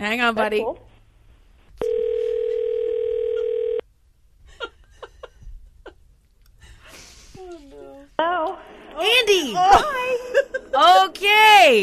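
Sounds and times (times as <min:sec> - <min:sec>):
speech: 0:00.0 - 0:00.9, 0:08.2 - 0:11.8
telephone dial tone while placing a call: 0:01.8 - 0:03.8.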